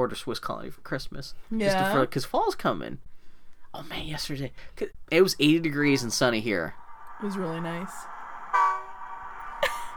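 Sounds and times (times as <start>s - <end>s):
speech: 0.0s - 3.1s, 3.7s - 8.1s
train horn blasts: 8.1s - 9.6s.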